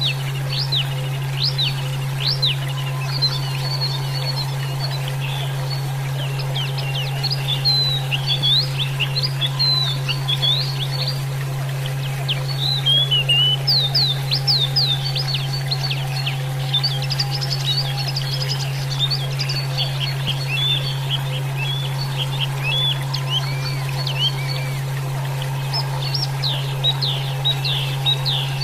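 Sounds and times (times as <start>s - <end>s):
Oriental magpie-robin song with sweet whistles, upsweeps and chirps: 0.0s - 28.6s
steady low electrical hum: 0.0s - 28.6s.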